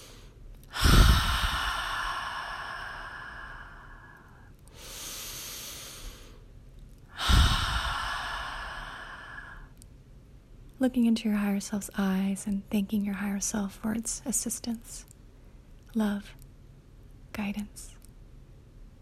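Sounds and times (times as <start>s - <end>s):
deep breaths drawn in and out: 0.0s - 6.5s, 7.1s - 9.8s
speech: 10.8s - 15.1s, 15.9s - 16.4s, 17.4s - 18.0s.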